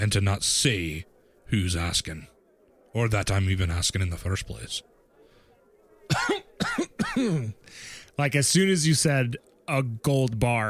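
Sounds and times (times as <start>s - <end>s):
speech: 0.0s - 2.3s, 2.9s - 4.9s, 6.1s - 10.6s
soft raspy coughing fit: 6.1s - 7.5s.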